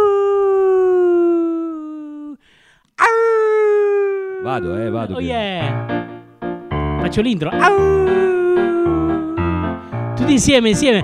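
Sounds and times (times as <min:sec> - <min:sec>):
person imitating a howl: 0:00.0 - 0:02.4, 0:03.0 - 0:05.2, 0:07.6 - 0:09.8
speech: 0:04.5 - 0:06.2, 0:07.0 - 0:08.4, 0:10.3 - 0:11.0.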